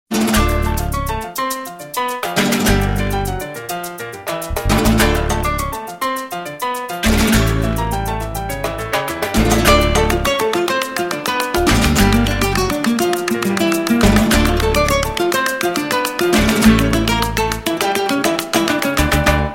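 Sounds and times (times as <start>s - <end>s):
instrumental electronica guitar: 0.1s - 19.5s.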